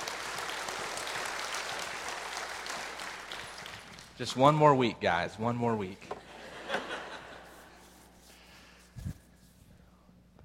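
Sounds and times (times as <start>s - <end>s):
audience clapping: 0.0s - 4.5s
speech: 4.2s - 6.2s
laughter: 6.2s - 8.0s.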